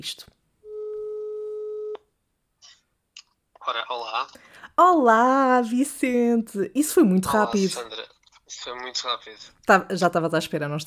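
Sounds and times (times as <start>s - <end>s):
speech: 0.0s - 0.3s, 3.7s - 10.8s
telephone call ringing tone: 0.6s - 2.0s.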